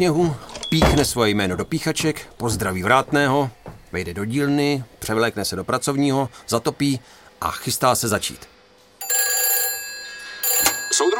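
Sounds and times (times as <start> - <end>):
speech: 0.0 - 8.5, 11.0 - 11.1
telephone bell ringing: 9.0 - 11.1.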